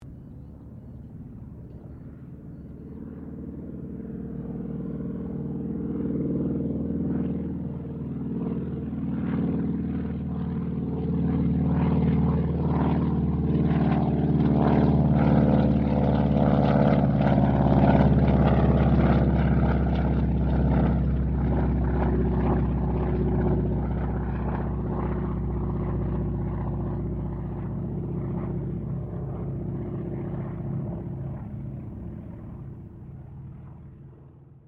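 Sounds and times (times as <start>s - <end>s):
CA-28 Ceres aircraft passing: 0.0s - 34.6s.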